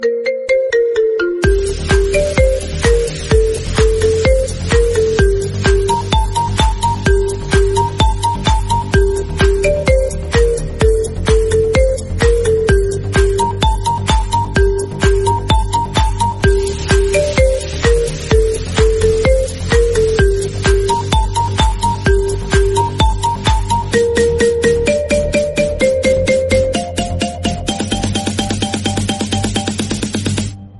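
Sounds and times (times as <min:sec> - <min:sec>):
iPhone marimba ringtone: 0:00.0 - 0:29.8.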